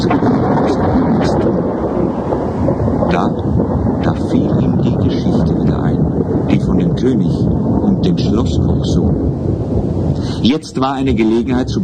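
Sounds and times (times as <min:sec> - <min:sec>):
rain: 0:00.0 - 0:11.8
thunder rumbling during a storm: 0:00.0 - 0:11.8
wind buffeting: 0:00.0 - 0:11.8
speech: 0:07.0 - 0:09.2, 0:10.2 - 0:11.8.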